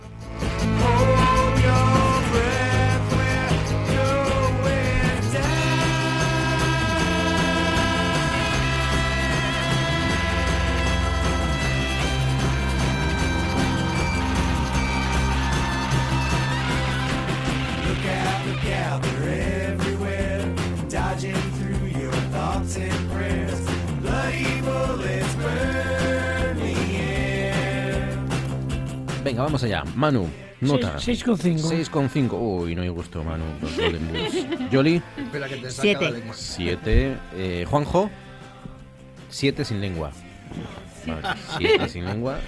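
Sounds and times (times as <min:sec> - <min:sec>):
band playing a song with sustained chords, bass line and driving drum beat: 0:00.3 - 0:29.3
speech: 0:29.6 - 0:38.2, 0:39.3 - 0:42.4
laughter: 0:33.5 - 0:36.3, 0:41.0 - 0:42.4.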